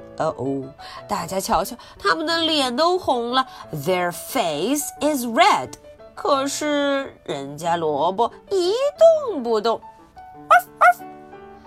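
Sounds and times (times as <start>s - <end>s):
speech: 0.2s - 11.1s
person mimicking a farmer's dog with yelping barks and howls: 10.5s - 11.0s
short sharp vocal yips: 10.5s - 11.1s.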